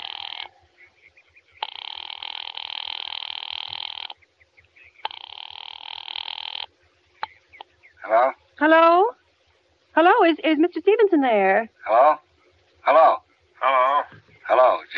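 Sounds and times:
telephone line ringing for a call to an office: 0:00.0 - 0:00.5, 0:01.6 - 0:04.2, 0:05.0 - 0:06.7
faint low hum: 0:00.0 - 0:14.9
speech: 0:10.3 - 0:12.2, 0:12.9 - 0:13.2.

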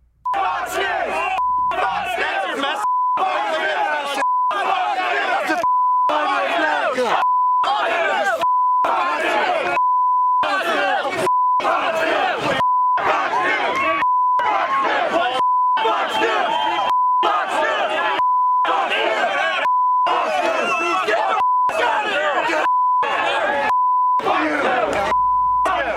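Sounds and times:
loud agitated mob shouting and chanting: 0:00.3 - 0:25.9
steady censor bleeps: 0:01.3 - 0:03.5, 0:04.2 - 0:04.7, 0:05.6 - 0:06.2, 0:07.2 - 0:07.7, 0:08.4 - 0:08.9, 0:09.8 - 0:10.5, 0:11.2 - 0:11.7, 0:12.6 - 0:13.1, 0:14.0 - 0:14.5, 0:15.4 - 0:17.3, 0:18.2 - 0:18.7, 0:19.6 - 0:20.2, 0:21.4 - 0:21.8, 0:22.6 - 0:24.2, 0:25.1 - 0:25.9.

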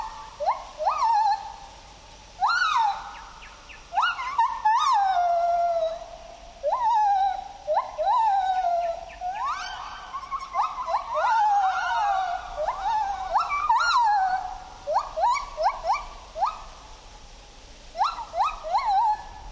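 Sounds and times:
pair of white-handed gibbons territorial duet calls in Khao Yai National Park Thailand: 0:02.4 - 0:03.2, 0:03.8 - 0:16.7, 0:17.9 - 0:19.4.

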